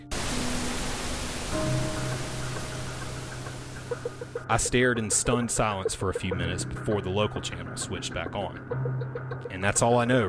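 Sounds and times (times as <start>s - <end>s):
loud television static hiss: 0.0s - 4.4s
speech: 4.5s - 10.2s.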